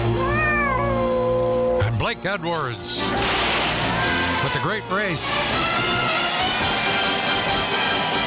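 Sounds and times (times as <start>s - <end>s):
cat meowing in drawn-out sliding cries: 0.2s - 1.6s
loud busy musical backing: 1.8s - 8.2s
speech: 2.3s - 3.5s, 4.5s - 5.8s.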